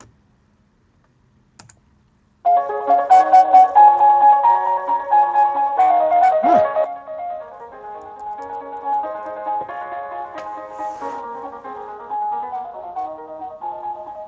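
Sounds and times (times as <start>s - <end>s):
fast prelude on keyboard through little computer speakers: 2.5s - 10.3s, 11.3s - 14.2s.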